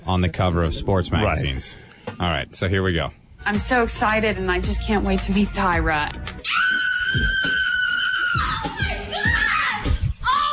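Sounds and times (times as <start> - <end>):
speech: 0.1 - 7.6
woman screaming loudly in excitement: 6.4 - 10.5.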